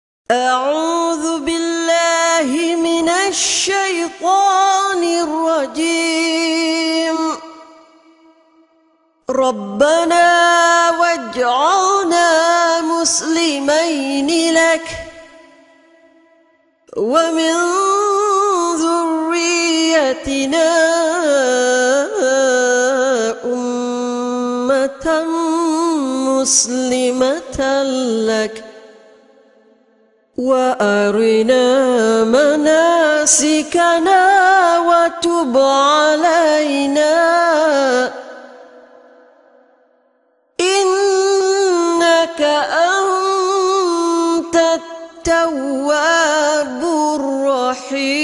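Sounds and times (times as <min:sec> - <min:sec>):
person reciting verses: 0:00.3 - 0:08.4, 0:09.2 - 0:16.1, 0:16.9 - 0:29.1, 0:30.4 - 0:39.4, 0:40.6 - 0:48.2.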